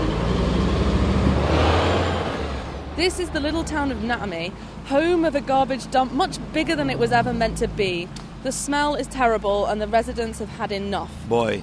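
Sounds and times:
huge garbage truck rolling past: 0.0s - 4.0s
speech: 3.0s - 11.6s.

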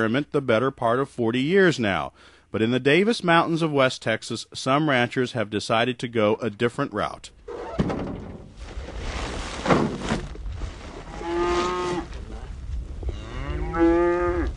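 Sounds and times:
speech: 0.0s - 8.1s
thuds of feed sacks being unloaded: 7.7s - 10.9s
shuffling: 8.5s - 13.1s
cattle mooing while feed is unloaded on a ranch in West Texas: 11.1s - 14.5s.

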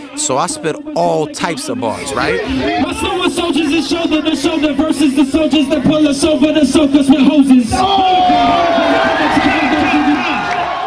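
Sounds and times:
speech: 0.2s - 10.4s
large crowd roaring and cheering loudly after rap verse: 7.8s - 10.8s.

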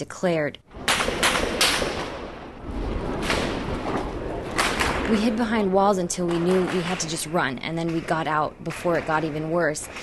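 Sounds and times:
speech: 0.0s - 0.7s, 5.1s - 10.0s
rumbling background: 0.0s - 10.0s
gunshots: 0.8s - 5.2s.

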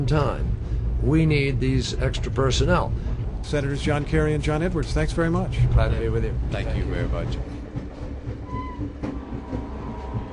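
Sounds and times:
speech: 0.0s - 7.6s
campaign train rumbling along the rails near Jefferson City Missouri: 0.0s - 10.3s.

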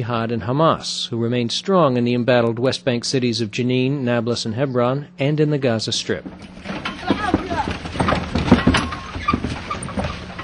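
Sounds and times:
speech: 0.0s - 6.6s
indistinct voices: 0.0s - 9.8s
donkey cart hooves clopping on a hard street: 6.2s - 10.4s.

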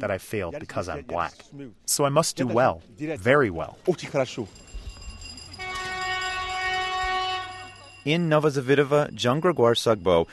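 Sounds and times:
speech: 0.0s - 4.8s, 8.0s - 10.3s
train horn blast: 5.6s - 7.8s.

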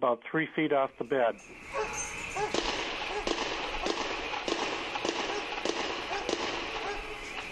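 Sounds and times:
speech: 0.0s - 2.7s
gunshots or explosions: 2.4s - 7.4s.

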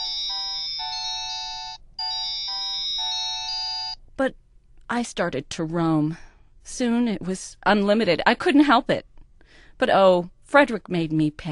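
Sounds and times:
customized mobile phone ringtone with looping synthesized melody: 0.0s - 4.0s
speech: 4.2s - 9.1s, 9.8s - 11.5s.

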